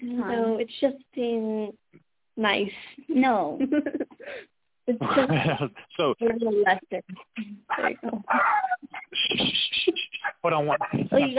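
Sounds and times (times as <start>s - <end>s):
speech: 0.0s - 1.8s, 2.4s - 11.3s
laughter: 5.0s - 6.2s, 7.7s - 11.3s
dogs yipping and whimpering: 7.7s - 9.2s, 10.2s - 11.3s.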